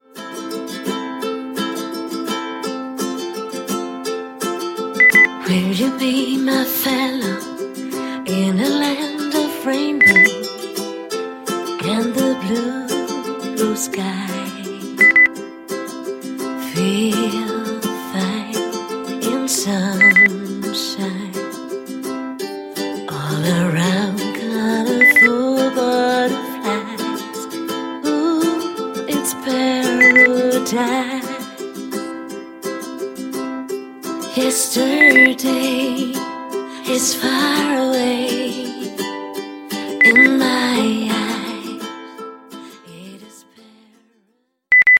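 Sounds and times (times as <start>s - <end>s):
person singing: 0.0s - 33.4s, 34.0s - 44.2s
rainbow beep tone: 5.0s - 5.3s, 10.0s - 10.3s, 15.0s - 15.3s, 20.0s - 20.3s, 25.0s - 25.3s, 30.0s - 30.3s, 35.0s - 35.3s, 40.0s - 40.3s, 44.7s - 44.9s.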